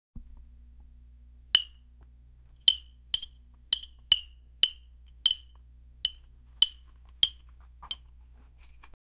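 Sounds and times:
stick hitting bluntly: 1.6s - 1.8s, 2.7s - 8.0s.

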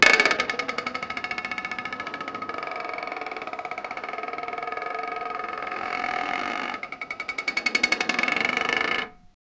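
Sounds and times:
large wooden wheel of a game show: 0.0s - 9.3s.

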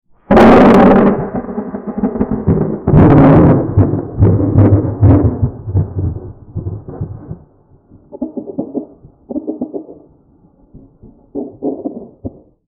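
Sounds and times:
cartoon thunderstorm: 0.2s - 10.1s.

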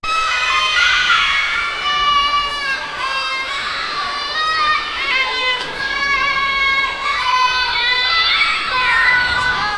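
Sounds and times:
children: 0.0s - 9.7s.

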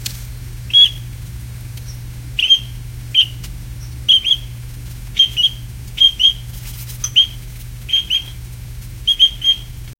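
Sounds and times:
pelican calling: 0.7s - 1.0s, 2.4s - 3.4s, 4.1s - 4.6s, 5.2s - 6.4s, 7.0s - 8.4s, 9.1s - 9.7s.

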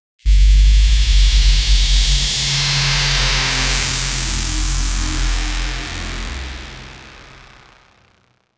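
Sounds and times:
epic cinematic electric bass rumble: 0.2s - 7.8s.

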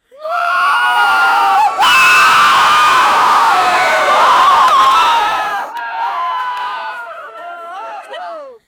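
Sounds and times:
studio audience erupting in shock: 0.4s - 5.7s.

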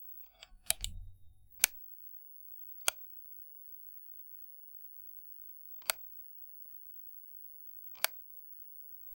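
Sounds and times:
light switching on: 0.3s - 1.8s.

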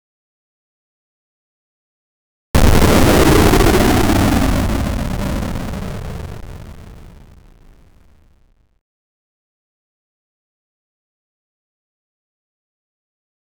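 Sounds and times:
heavy 8-bit arcade hit impact: 2.6s - 7.9s.

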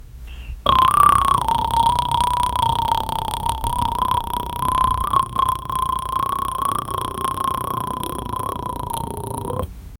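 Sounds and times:
relaxing ASMR mouth sounds: 0.6s - 9.7s.

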